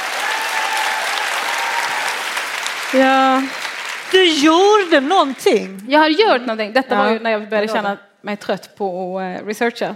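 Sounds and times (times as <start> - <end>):
audience applauding: 0.0 - 5.8
speech: 2.9 - 9.9.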